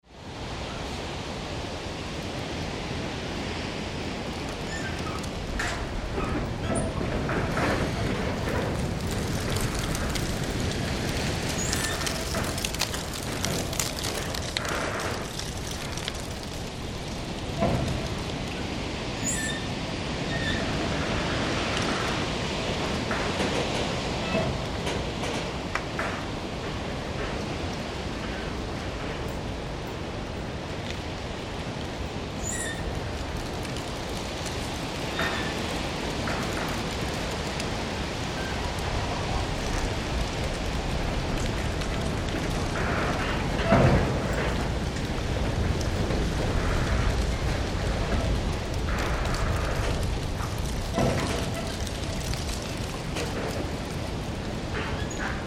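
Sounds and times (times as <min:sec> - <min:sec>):
dry leaves blown along by wind: 0:00.0 - 0:23.1, 0:29.4 - 0:55.4
wind through farm outbuildings: 0:00.0 - 0:55.4
metal creaks of farm outbuildings in the wind: 0:04.5 - 0:29.5, 0:32.4 - 0:55.4.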